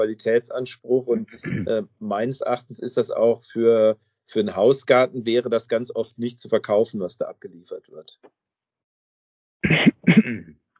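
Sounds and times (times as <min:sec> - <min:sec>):
speech: 0:00.0 - 0:08.4, 0:09.6 - 0:10.6
quick coughs: 0:01.3 - 0:01.9, 0:09.6 - 0:10.6.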